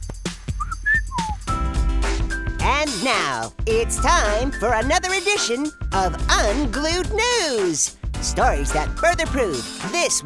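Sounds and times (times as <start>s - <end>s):
busy musical backdrop with rhythmic hits: 0.0s - 10.1s
person whistling a short bright tune: 0.6s - 1.5s
speech: 3.0s - 10.2s.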